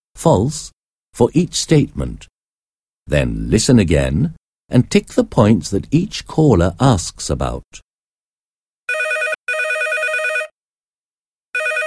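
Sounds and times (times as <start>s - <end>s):
speech: 0.2s - 2.3s, 3.1s - 7.8s
telephone with bright electronic double ring: 8.9s - 10.6s, 11.6s - 11.8s.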